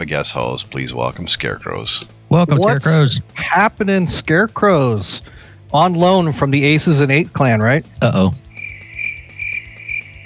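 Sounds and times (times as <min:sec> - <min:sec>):
speech: 0:00.0 - 0:08.4
low steady hum: 0:02.3 - 0:03.3
cricket chirping in high-pitched trills: 0:08.5 - 0:10.2.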